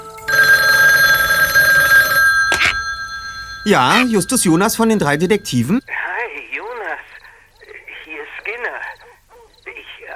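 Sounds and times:
telephone bell ringing: 0.0 - 5.9
handset clatter: 2.4 - 4.0
speech: 3.6 - 6.0.

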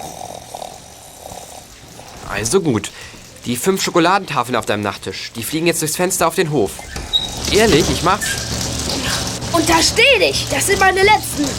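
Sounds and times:
drowsy person in bed grunting and snorting: 0.0 - 1.7
rain falling against the windows: 0.0 - 11.5
speech: 2.3 - 8.6, 9.6 - 11.5.

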